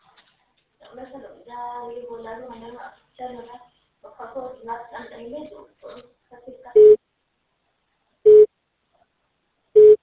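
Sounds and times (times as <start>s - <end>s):
speech: 0.9s - 6.9s
telephone busy signal: 6.8s - 7.0s, 8.3s - 8.5s, 9.8s - 10.0s.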